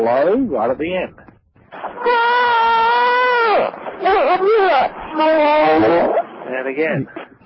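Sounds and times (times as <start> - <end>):
speech: 0.0 - 1.2, 1.8 - 2.5, 3.6 - 7.2
four-month-old baby crying: 2.0 - 6.0.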